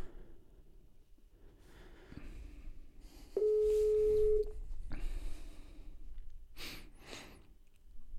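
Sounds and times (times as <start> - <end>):
quiet breathing: 0.0 - 7.7
ringing tone from an outgoing phone call: 3.4 - 4.5.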